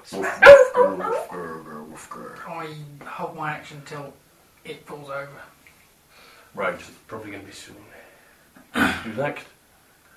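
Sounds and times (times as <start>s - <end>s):
speech: 0.1s - 1.0s, 2.6s - 5.6s, 6.5s - 8.0s, 8.7s - 9.5s
dog barking: 0.2s - 1.4s.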